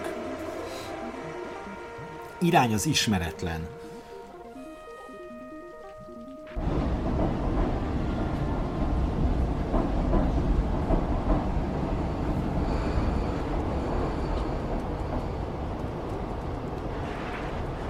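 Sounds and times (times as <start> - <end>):
video game metro train starting up and rumbling: 0.0 - 4.5, 6.1 - 17.8
speech: 2.4 - 3.8.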